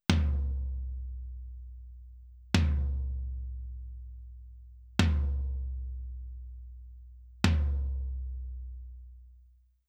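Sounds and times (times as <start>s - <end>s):
tom drum through FET compressor: 0.1s - 1.0s, 2.6s - 3.4s, 5.0s - 5.8s, 7.4s - 8.4s.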